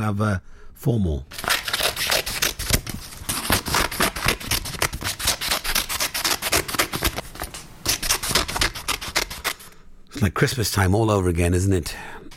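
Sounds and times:
speech: 0.0s - 1.6s, 10.2s - 12.2s
scissors cutting paper: 1.3s - 9.7s.

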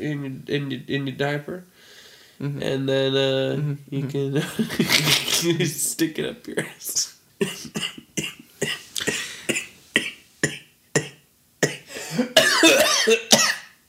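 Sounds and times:
speech: 0.0s - 8.8s
harsh repeated coughing: 7.4s - 13.8s.

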